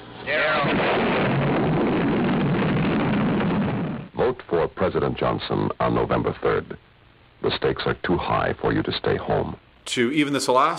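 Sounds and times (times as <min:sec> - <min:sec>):
heavy roaring rumble of nuclear explosion: 0:00.3 - 0:04.2
nuclear explosion: 0:00.3 - 0:04.2
speech: 0:04.9 - 0:06.8, 0:07.4 - 0:10.7.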